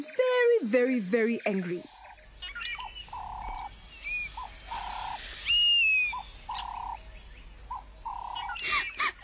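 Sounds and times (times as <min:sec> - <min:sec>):
speech: 0:00.0 - 0:02.0
honey-guide bird chirping: 0:00.0 - 0:09.2
soft constant outdoor ambience: 0:00.0 - 0:09.2
higher thin whistles of a honey-guide bird: 0:02.6 - 0:06.7.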